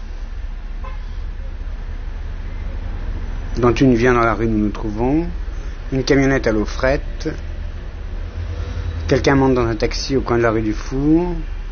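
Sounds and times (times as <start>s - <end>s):
street traffic roar: 0.0s - 11.7s
short car horn toot: 0.8s - 1.2s
speech: 3.6s - 7.5s, 9.1s - 11.5s.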